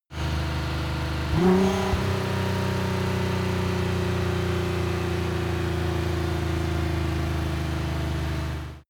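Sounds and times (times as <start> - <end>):
Nissan GT-R 35 engine decelerating: 0.2 - 8.8
Nissan GT-R 35 engine revving up: 0.4 - 4.9.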